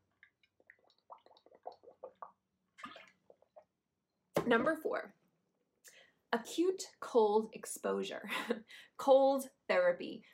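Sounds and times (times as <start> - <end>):
person sipping water with slurps and gulps: 0.0 - 3.8
quiet swallows: 0.9 - 3.7
speech: 4.5 - 5.2, 6.3 - 10.3.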